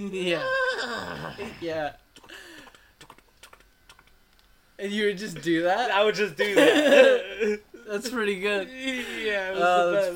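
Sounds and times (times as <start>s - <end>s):
speech: 0.0s - 2.4s, 4.8s - 10.1s
voice imitating a horse neigh: 0.2s - 1.6s
laughter: 6.4s - 7.6s.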